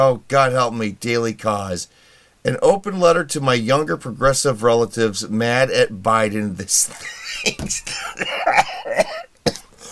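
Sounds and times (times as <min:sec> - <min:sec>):
speech: 0:00.0 - 0:09.1
person coughing: 0:06.9 - 0:09.9.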